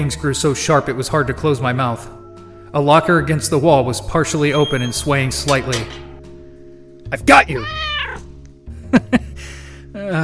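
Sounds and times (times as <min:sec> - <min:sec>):
speech: 0:00.0 - 0:06.1, 0:07.1 - 0:07.9, 0:10.0 - 0:10.2
cat meowing: 0:07.5 - 0:08.4.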